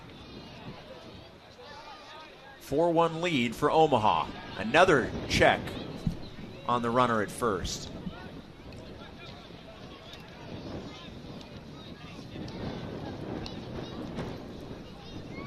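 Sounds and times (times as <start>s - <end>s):
strong wind blowing against the microphone at a baseball game: 0.0s - 15.4s
speech: 2.7s - 5.8s, 6.7s - 8.0s.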